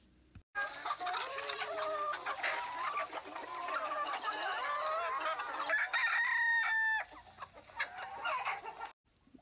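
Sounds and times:
flock of chickens clucking and squawking: 0.6s - 9.0s
rooster crowing: 4.7s - 7.1s.

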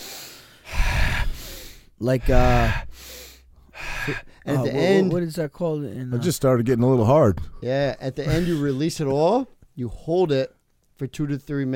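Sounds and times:
forceful deep abdominal breathing exercise: 0.0s - 4.6s
speech: 2.0s - 3.2s, 4.0s - 11.7s.

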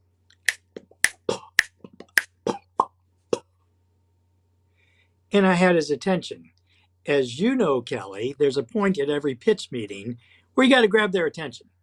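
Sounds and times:
mouth pops and tongue clicks made with the mouth, tongue and lips: 0.3s - 3.5s
speech: 5.3s - 11.7s.

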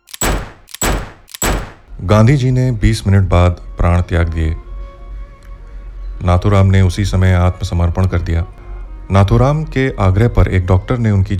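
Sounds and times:
gunshots: 0.0s - 1.9s
speech: 2.0s - 4.6s, 6.2s - 11.3s.

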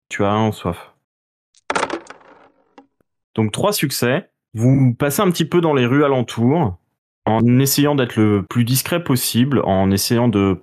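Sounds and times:
speech: 0.2s - 0.9s, 3.4s - 10.6s
six dice rolled for a skill check clattering onto a hard surface: 1.6s - 2.9s.

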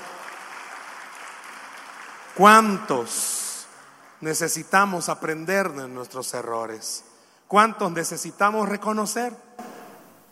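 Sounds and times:
crowd applauding: 0.0s - 4.3s
speech: 2.4s - 3.4s, 4.2s - 9.7s.

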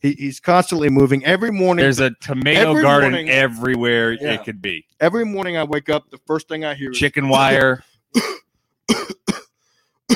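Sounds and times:
speech: 0.0s - 9.1s
man's husky morning cough: 8.2s - 9.5s.

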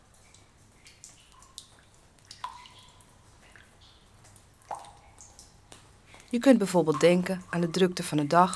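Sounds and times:
water drops dripping in a cave: 0.0s - 8.5s
speech: 6.3s - 8.5s.

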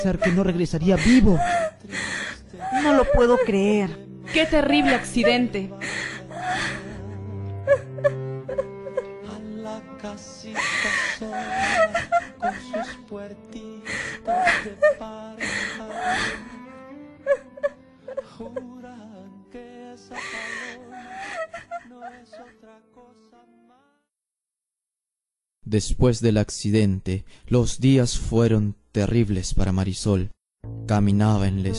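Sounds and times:
speech: 0.0s - 5.9s, 7.7s - 8.2s, 21.8s - 23.6s, 25.6s - 31.7s
woman crying and wailing in grief after a fatal accident: 0.0s - 9.2s, 10.6s - 13.0s, 13.9s - 16.6s, 17.2s - 18.8s, 20.1s - 22.5s.

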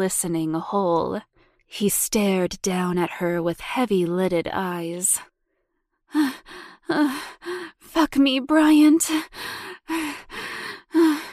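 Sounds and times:
speech: 0.0s - 5.3s, 6.1s - 10.4s
woman panting: 6.1s - 7.9s, 9.1s - 11.3s.

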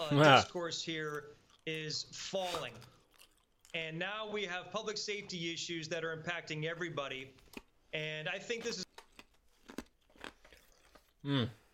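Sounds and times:
speech: 0.1s - 2.9s, 3.7s - 8.8s, 11.2s - 11.6s
chewing on ice: 1.4s - 3.8s, 8.8s - 11.2s.

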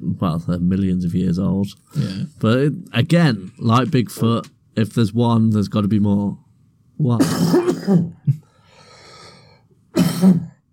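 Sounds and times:
speech: 0.2s - 6.4s, 7.0s - 8.4s, 10.2s - 10.5s
person coughing roughly: 7.2s - 8.6s, 9.9s - 10.6s.

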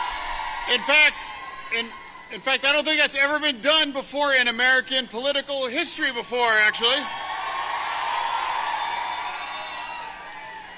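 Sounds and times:
politician's crowd cheering and whooping: 0.0s - 2.4s, 6.0s - 10.7s
speech: 0.7s - 7.2s.

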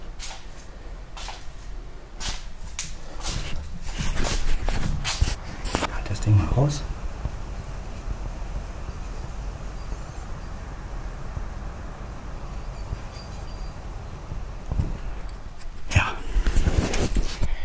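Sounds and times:
wind blowing outside: 0.0s - 17.6s
wind gust thumping on the microphone: 2.2s - 17.5s
speech: 6.6s - 6.9s.

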